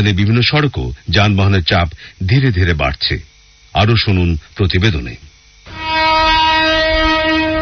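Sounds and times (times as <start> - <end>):
speech: 0.0 - 5.3
train horn at a busy railway station platform in Dhaka: 5.7 - 7.5.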